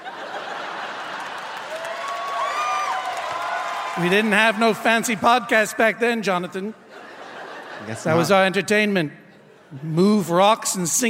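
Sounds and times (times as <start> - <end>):
laughter: 0.0 - 2.0, 6.6 - 10.1
large crowd in Portland clapping: 0.0 - 5.1
people cheering: 0.0 - 5.1
speech: 4.0 - 6.8, 7.8 - 11.0.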